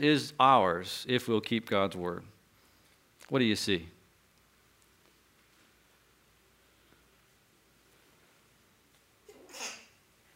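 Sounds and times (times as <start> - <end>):
speech: 0.0 - 2.3, 3.3 - 4.0
quiet room noise: 0.0 - 10.3
faint sneeze: 9.3 - 10.0.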